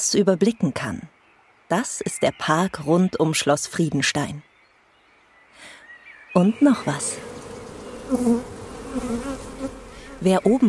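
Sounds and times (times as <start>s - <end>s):
speech: 0.0s - 4.5s, 5.6s - 7.4s, 8.1s - 10.6s
honeybees buzzing at wooden hives: 6.4s - 10.6s.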